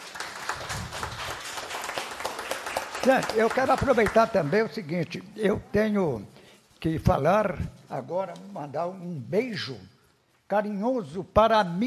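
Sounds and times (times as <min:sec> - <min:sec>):
crowd applauding the legislature at a public session: 0:00.0 - 0:04.9
speech: 0:03.0 - 0:09.9, 0:10.5 - 0:11.8.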